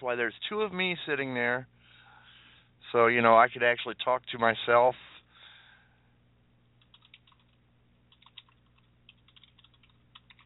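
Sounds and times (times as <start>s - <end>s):
speech: 0.0s - 1.8s, 2.9s - 5.1s
low steady hum: 0.0s - 10.4s
angry typing on a computer keyboard: 6.8s - 10.4s.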